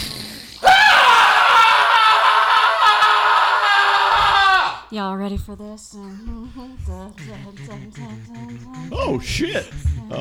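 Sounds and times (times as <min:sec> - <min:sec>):
person screaming: 0:00.6 - 0:04.9
speech: 0:04.9 - 0:10.1.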